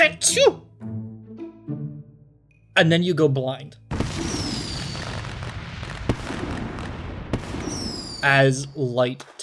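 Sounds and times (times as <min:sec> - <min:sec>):
speech: 0:00.1 - 0:00.7, 0:02.8 - 0:03.8, 0:08.2 - 0:09.4
explosion effect with dense roaring rumble: 0:03.9 - 0:08.2
sharp cracking bangs: 0:03.9 - 0:08.2.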